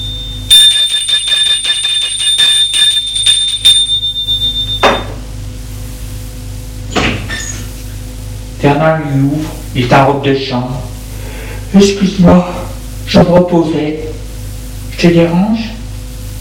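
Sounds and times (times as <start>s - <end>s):
electric doorbell ringing with rattling trill: 0.0s - 5.1s
speech: 8.7s - 10.9s, 11.7s - 14.1s, 15.0s - 15.7s.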